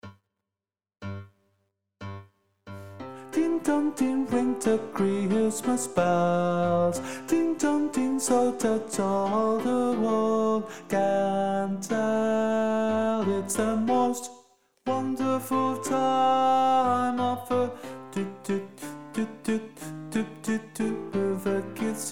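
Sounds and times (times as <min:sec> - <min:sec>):
tenor singing in a show choir: 0:03.3 - 0:22.1.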